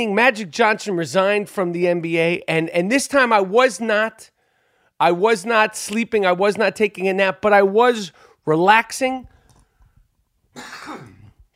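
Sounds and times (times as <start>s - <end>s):
speech: 0.0s - 4.3s, 5.0s - 9.3s, 10.6s - 11.1s
man coughing hoarsely: 10.6s - 11.4s.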